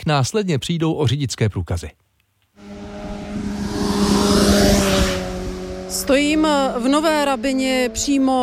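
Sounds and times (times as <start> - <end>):
speech: 0.0 - 2.0, 6.0 - 8.4
motorcycle engine roaring as it speeds past: 2.6 - 8.4.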